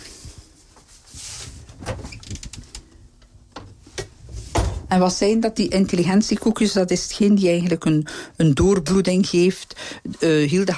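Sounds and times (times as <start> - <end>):
refrigerator door pulled open with a soft whoosh: 1.7 - 2.5
refrigerator door thumping shut: 4.5 - 4.9
speech: 4.9 - 10.7.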